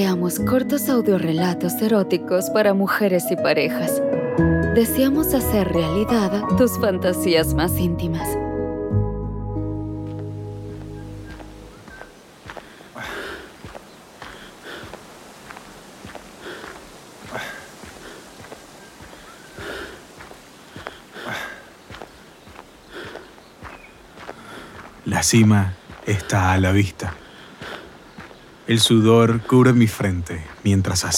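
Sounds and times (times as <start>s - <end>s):
speech: 0.0s - 8.4s, 25.2s - 27.2s, 28.7s - 31.1s
brief musical tone: 4.0s - 11.9s
hesitant footsteps on rough gravelly mountain trail: 10.0s - 30.9s.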